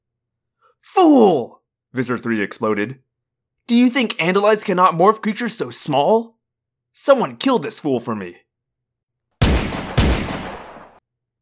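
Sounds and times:
speech: 0.8s - 3.1s, 3.7s - 8.5s
gunshots: 9.4s - 11.0s.

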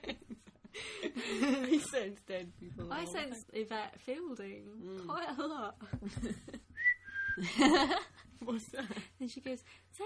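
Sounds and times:
speech: 1.1s - 6.6s, 7.4s - 10.0s
person whistling a short steady high note: 6.8s - 7.5s.

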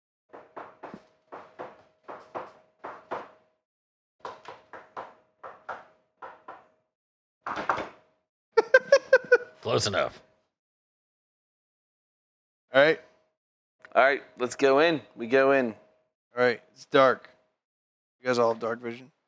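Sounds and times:
secret knock pattern rapped on a hard surface: 0.4s - 3.4s, 4.2s - 6.7s
laughter: 8.6s - 9.5s
speech: 9.7s - 10.3s, 14.0s - 15.8s, 16.4s - 17.3s, 18.2s - 19.2s.

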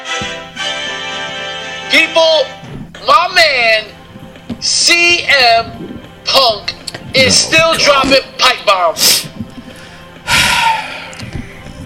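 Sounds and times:
speech: 1.9s - 4.0s, 4.6s - 9.3s
faint low murmuring: 3.9s - 9.7s
heavy harsh breath into microphone: 9.0s - 11.8s.

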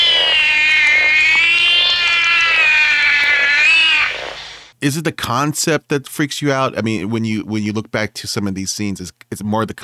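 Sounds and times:
cat meowing: 0.1s - 4.2s
speech: 4.8s - 9.8s.

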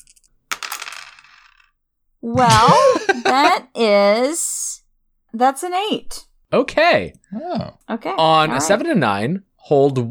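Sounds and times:
dice tumbling and rattling on a hard table: 0.0s - 1.7s
speech: 2.2s - 4.6s, 5.3s - 10.0s
laughter: 2.3s - 3.7s.

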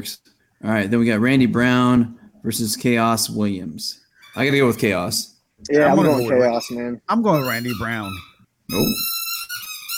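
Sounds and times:
speech: 0.0s - 9.1s
squeaky chew toy squealing as a dog squeezes it: 4.2s - 5.1s, 5.8s - 9.9s.

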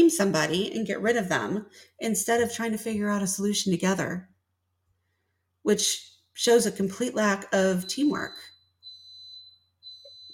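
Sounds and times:
speech: 0.1s - 4.3s, 5.6s - 8.5s
coffee maker beeping: 7.8s - 10.3s.

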